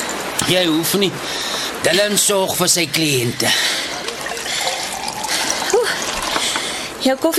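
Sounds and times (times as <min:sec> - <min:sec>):
speech: 0:00.5 - 0:03.9, 0:07.0 - 0:07.3
water trickling into a glass in a coffee shop: 0:03.0 - 0:06.9.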